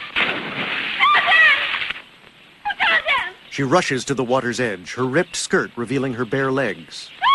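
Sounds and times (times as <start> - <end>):
splash of a man diving from a branch into a river: 0.1 - 2.0
speech: 3.6 - 7.2.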